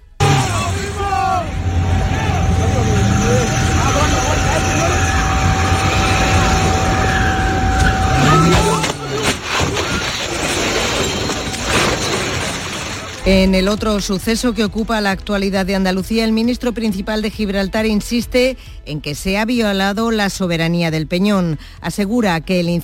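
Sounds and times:
car roaring into a roundabout at high speed in Andalusia Spain: 0:00.0 - 0:13.9
rough rumbling noise: 0:00.0 - 0:15.3
speech: 0:13.3 - 0:22.8.

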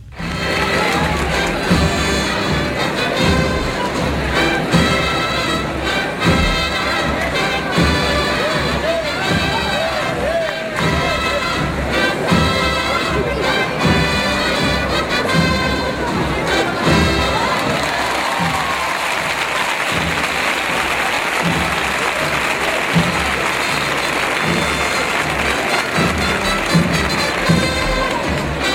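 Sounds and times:
scattered cheers: 0:00.0 - 0:04.8, 0:06.0 - 0:14.0, 0:15.1 - 0:28.7
dense outdoor crowd murmuring at a Holy Week procession: 0:00.0 - 0:28.7.

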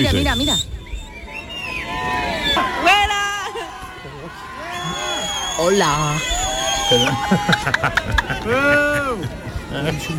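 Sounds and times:
speech: 0:00.0 - 0:00.7, 0:05.6 - 0:10.1
shrill rising and falling whistles from tourists: 0:00.0 - 0:02.8, 0:04.7 - 0:07.1
crowd of tourists jeering and shouting at a woman at the pyramid of Kukulcán: 0:01.2 - 0:10.1
laughter: 0:06.9 - 0:10.1.

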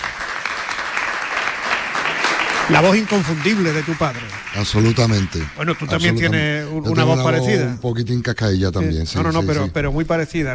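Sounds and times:
crowd applauding a guest: 0:00.0 - 0:06.7
speech: 0:02.7 - 0:10.5.

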